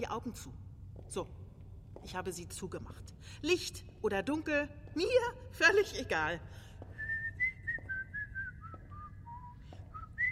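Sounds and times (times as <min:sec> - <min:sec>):
speech: 0:00.0 - 0:01.4, 0:02.0 - 0:06.7
low steady hum: 0:00.0 - 0:10.3
person whistling a slow wandering tune: 0:07.0 - 0:10.3.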